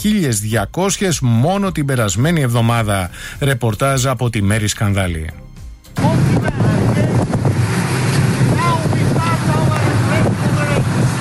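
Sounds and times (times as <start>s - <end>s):
speech: 0.0s - 5.4s
boat engine rumble at sea: 5.4s - 11.2s
water rushing past the boat: 6.0s - 11.2s
wind buffeting the microphone: 6.0s - 11.2s.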